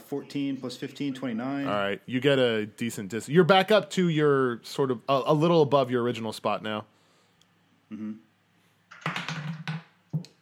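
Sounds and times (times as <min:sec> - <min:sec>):
speech: 0:00.1 - 0:07.0, 0:07.9 - 0:08.3
dice clattering off a table: 0:08.9 - 0:09.9.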